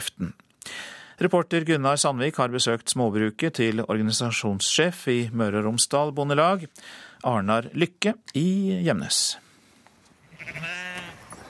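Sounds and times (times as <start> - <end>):
speech: 0.2 - 0.4, 1.2 - 9.4
old Norwegian spælsau sheep bleating on a smallholding in Gjemnes Norway: 10.2 - 11.2.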